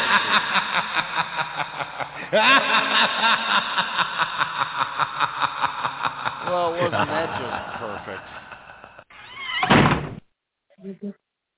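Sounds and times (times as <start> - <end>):
laughter: 0.0 - 9.1
speech: 0.1 - 5.6
door squeal: 9.1 - 10.2
door slamming shut: 9.4 - 10.2.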